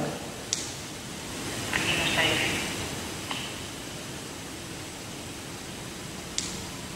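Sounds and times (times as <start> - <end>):
faint white noise: 0.0 - 6.9
soft clicks: 6.4 - 6.6.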